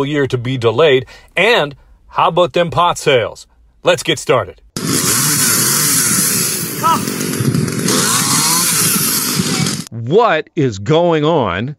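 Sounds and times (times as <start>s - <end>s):
speech: 0.0s - 5.1s, 10.0s - 11.7s
chainsaws revving at a beach: 4.8s - 9.9s
indistinct voices: 6.8s - 7.2s, 7.9s - 9.9s.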